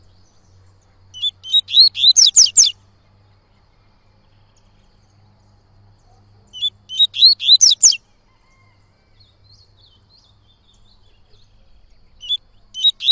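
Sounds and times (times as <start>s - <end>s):
Yellow-bellied Seedeater singing tui-tui song of high chirps: 0.0s - 2.8s, 6.5s - 8.0s, 9.8s - 13.1s.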